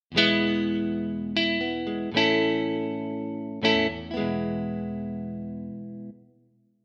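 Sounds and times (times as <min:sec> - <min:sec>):
Stratocaster electric guitar: 0:00.1 - 0:06.4.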